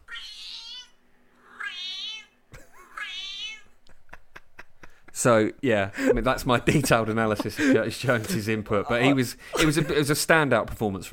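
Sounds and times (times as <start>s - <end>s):
cat meowing long and whiny: 0.0s - 3.7s
laughter: 3.8s - 5.3s, 5.9s - 10.2s
speech: 5.2s - 11.1s.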